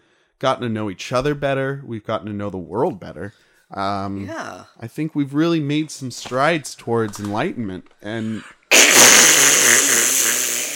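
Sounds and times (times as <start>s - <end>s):
speech: 0.4s - 9.2s
fart in a bathtub: 8.7s - 10.7s.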